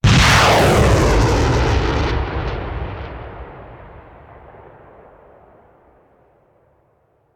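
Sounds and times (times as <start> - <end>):
artillery missile launcher firing: 0.0 - 4.8.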